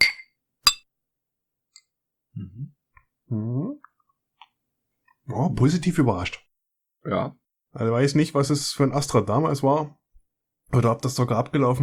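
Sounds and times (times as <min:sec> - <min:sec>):
beer bottles clinking together in a toast: 0:00.0 - 0:00.8
speech: 0:02.4 - 0:03.8, 0:05.3 - 0:10.0, 0:10.7 - 0:11.8.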